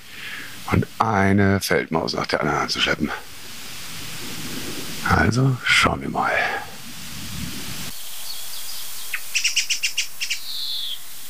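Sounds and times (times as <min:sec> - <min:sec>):
speech: 0:00.7 - 0:03.3, 0:05.0 - 0:06.5
Song thrush alarm calls in an old oak, mobbing a roosting tawny owl: 0:02.4 - 0:11.2.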